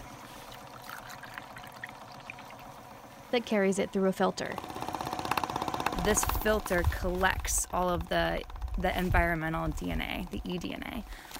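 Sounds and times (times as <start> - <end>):
water poured from buckets into a pump at a snow-covered pond: 0.0 - 3.1
speech: 3.3 - 4.8, 6.0 - 11.3.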